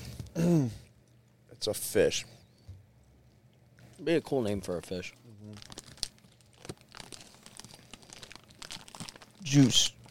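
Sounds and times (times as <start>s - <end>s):
speech: 0.4s - 0.8s, 1.6s - 2.4s, 4.0s - 5.7s, 9.4s - 10.0s
hand rustling and crinkling inside a snack bag: 5.5s - 10.0s.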